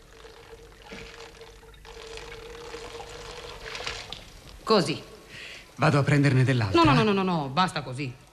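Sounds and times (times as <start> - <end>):
water pouring onto small pebbles: 0.0 - 4.6
speech: 4.7 - 5.1, 5.8 - 8.2.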